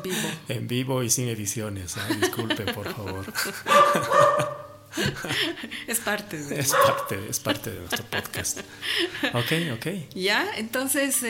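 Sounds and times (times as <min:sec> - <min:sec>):
speech: 0:00.0 - 0:11.2
laughter: 0:02.0 - 0:05.9, 0:06.6 - 0:09.8
small female dog yapping: 0:03.7 - 0:04.7, 0:06.7 - 0:07.2.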